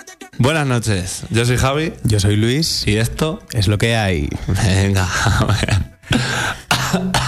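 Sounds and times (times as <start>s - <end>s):
speech: 0.5s - 5.9s
loud chesty cough from an ill person: 5.2s - 7.2s.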